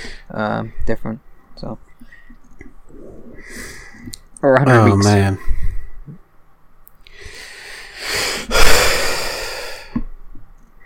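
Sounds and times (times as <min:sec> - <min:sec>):
speech: 0:00.3 - 0:02.3, 0:04.4 - 0:05.5
heavy breathing while catching breath: 0:02.0 - 0:04.2, 0:07.1 - 0:10.0.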